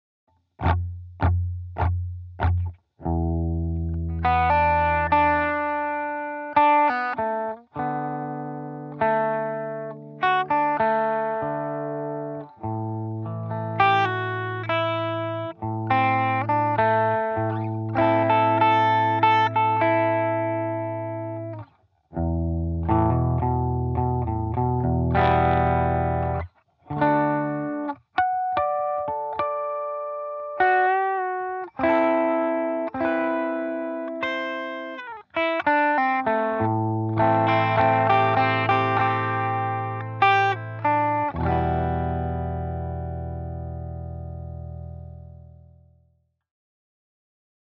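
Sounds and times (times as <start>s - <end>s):
blues track: 0.6s - 45.7s.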